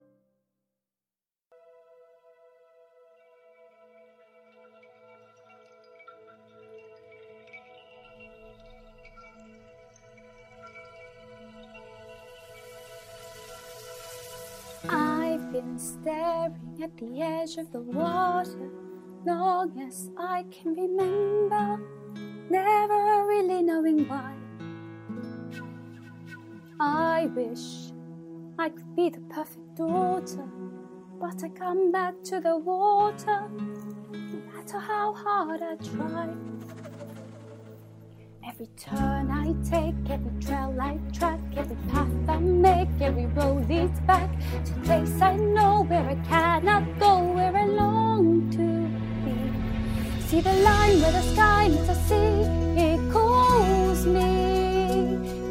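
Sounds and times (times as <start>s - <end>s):
British woman singing: 14.8s - 24.4s, 26.8s - 28.0s, 28.6s - 36.7s, 38.4s - 55.4s.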